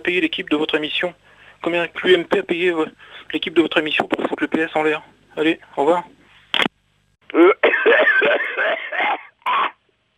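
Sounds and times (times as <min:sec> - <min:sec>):
speech: 0:00.0 - 0:06.2
man coughing from Havana cigar smoke: 0:07.3 - 0:09.8.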